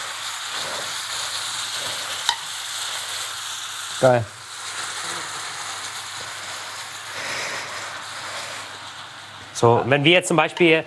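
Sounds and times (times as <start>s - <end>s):
reduced braising sauce sizzling as it is poured over celery: 0.0s - 10.8s
speech: 4.0s - 4.4s, 9.6s - 10.8s.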